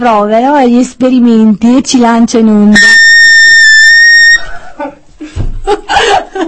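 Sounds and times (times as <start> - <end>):
speech: 0.0 - 3.1
loud shrill whistle blown in a whistle game: 2.8 - 4.5
people laughing: 4.4 - 6.4.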